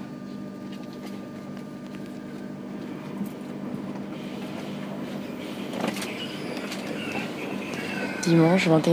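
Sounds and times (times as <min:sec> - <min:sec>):
high-speed TGV train humming at a station: 0:00.0 - 0:08.9
TGV train automatic doors sliding shut with whoosh and thud: 0:03.9 - 0:08.9
speech: 0:08.3 - 0:08.9.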